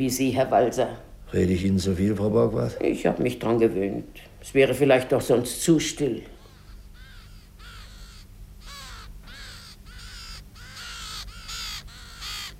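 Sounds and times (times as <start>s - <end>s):
speech: 0.0s - 6.3s
low constant hum: 0.0s - 12.5s
two ravens cawing: 6.2s - 12.5s.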